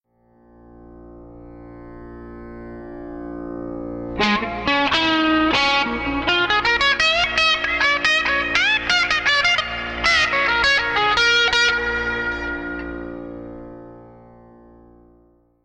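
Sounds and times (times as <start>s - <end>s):
pedal steel guitar: 0.7s - 15.6s
classic rock drone: 4.1s - 14.4s.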